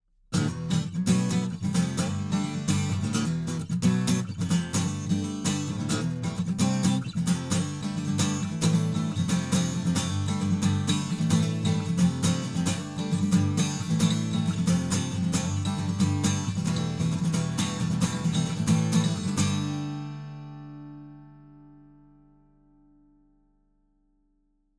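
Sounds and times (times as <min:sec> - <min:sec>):
acoustic guitar strumming test with microphones at neck and body: 0:00.3 - 0:23.1.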